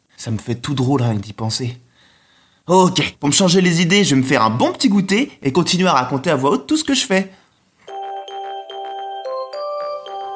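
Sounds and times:
speech: 0.2s - 1.9s, 2.7s - 7.4s
electronic chime melody: 7.9s - 10.3s.

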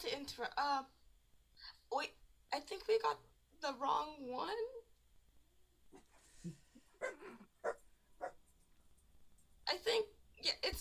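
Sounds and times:
speech: 0.1s - 1.0s, 1.9s - 4.8s, 5.9s - 7.4s, 9.7s - 10.7s
dog whining: 7.0s - 8.4s.

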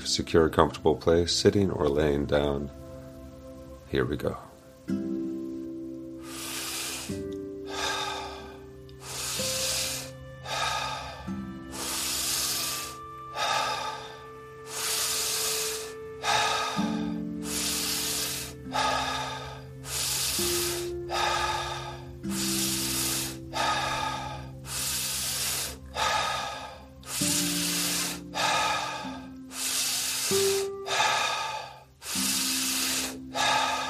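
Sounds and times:
soft sustained musical drone: 0.0s - 33.8s
speech: 0.1s - 2.8s, 3.9s - 5.2s
deep forceful breathing in and out: 4.5s - 33.8s.

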